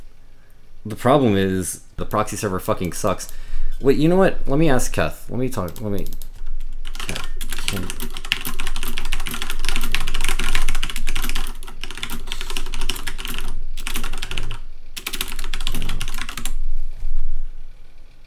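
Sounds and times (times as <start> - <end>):
speech: 0.8 - 6.3, 7.1 - 8.2
rapid typing on a mechanical computer keyboard: 5.6 - 16.6.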